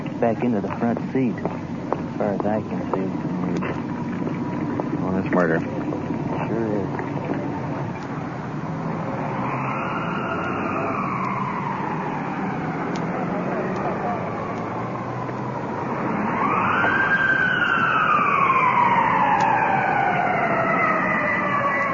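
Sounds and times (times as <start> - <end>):
steady traffic rumble: 0.0 - 21.9
speech: 0.2 - 1.6, 2.2 - 3.3, 5.1 - 5.8
ambulance siren wailing: 4.4 - 21.9.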